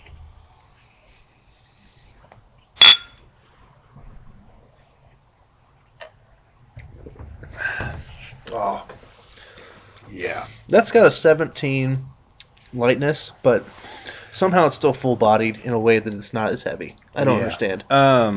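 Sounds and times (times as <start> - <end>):
glasses clinking in a toast: 2.8 - 3.2
speech: 10.3 - 12.1, 12.7 - 13.8, 14.4 - 18.3.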